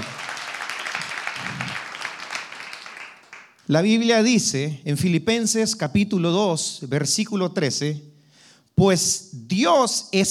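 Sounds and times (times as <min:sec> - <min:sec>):
audience applause at an evening service: 0:00.0 - 0:03.7
speech: 0:03.7 - 0:08.1, 0:08.8 - 0:10.2.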